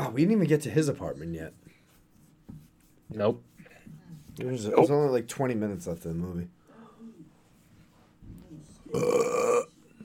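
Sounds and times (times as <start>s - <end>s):
speech: 0.1s - 1.8s, 3.1s - 3.5s, 4.4s - 6.6s, 8.9s - 9.7s
loud drawn-out burp: 8.9s - 9.8s.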